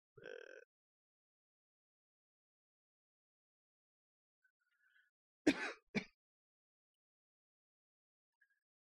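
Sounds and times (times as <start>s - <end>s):
person coughing: 5.5s - 6.2s.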